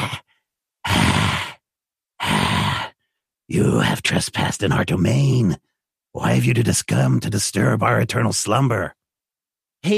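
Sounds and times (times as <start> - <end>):
voice imitating raspy breathing of clawed monster creatures: 0.0 - 1.6, 2.2 - 3.0
speech: 3.5 - 9.0.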